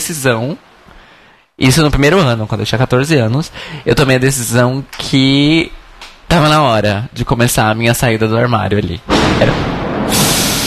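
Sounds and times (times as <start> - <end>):
speech: 0.1 - 0.7, 1.6 - 10.2
loud thunder clap with roaring rumble: 9.0 - 10.6.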